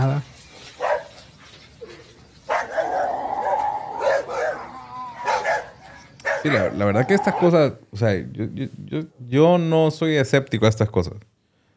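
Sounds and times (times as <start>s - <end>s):
several agitated dogs barking and yelping in darkness: 0.6s - 7.6s
speech: 6.4s - 11.3s.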